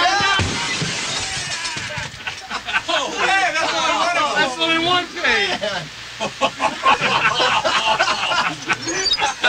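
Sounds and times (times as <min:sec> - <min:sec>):
glass shattering and crashing: 0:00.2 - 0:02.0
laughter: 0:01.9 - 0:04.3, 0:05.5 - 0:09.4.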